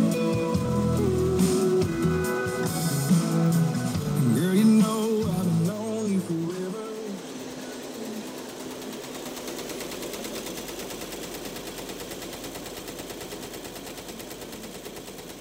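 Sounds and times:
room of Tajima embroidery machines stitching a high school basketball team logo: 0.0s - 15.4s.

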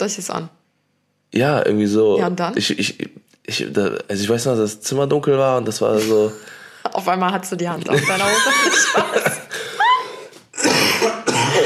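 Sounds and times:
speech: 0.0s - 0.6s, 1.3s - 9.4s
laughter: 7.9s - 10.2s
person coughing with a rough throaty rasp: 10.5s - 11.6s.

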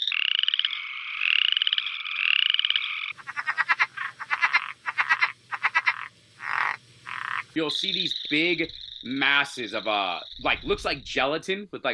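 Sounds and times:
chorus frogs calling at night: 0.0s - 11.1s
rapid rising chirps: 2.8s - 11.4s
faint low hum: 3.2s - 11.9s
speech: 7.6s - 11.9s.

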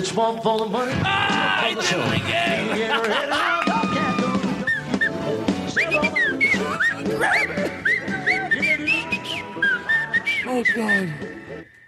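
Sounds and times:
speech: 0.0s - 4.0s, 5.8s - 7.9s, 10.5s - 11.4s
laughter: 1.6s - 4.7s
person whistling a wavering sliding tune: 4.6s - 11.8s.

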